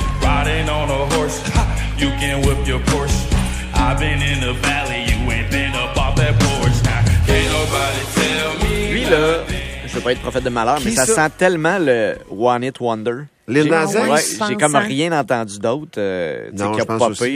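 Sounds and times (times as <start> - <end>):
pop song performed live on stage by a band: 0.0 - 11.3
speech: 1.3 - 3.2, 3.8 - 6.5, 9.1 - 17.3.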